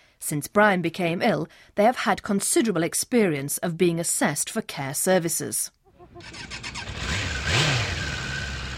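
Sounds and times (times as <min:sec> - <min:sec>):
speech: 0:00.3 - 0:06.7
motorcycle engine idling and revving: 0:06.0 - 0:08.7.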